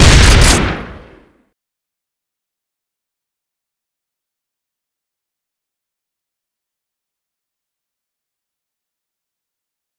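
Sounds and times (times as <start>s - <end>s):
scatter gun shooting: 0.0s - 1.2s.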